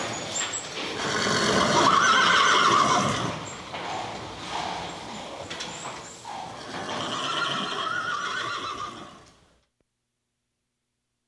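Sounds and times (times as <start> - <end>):
horse whinnying in a stable: 1.0 - 3.6, 6.3 - 9.4.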